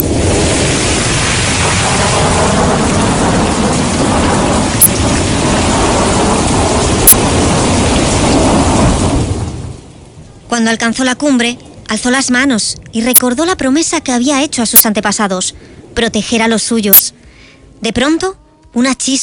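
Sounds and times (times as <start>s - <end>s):
sharp thunder cracks: 0.0s - 9.8s
rushing wind in a thunderstorm: 0.0s - 10.2s
heavy steady rain in a thunderstorm: 0.0s - 18.2s
speech: 10.7s - 17.2s, 17.8s - 19.2s.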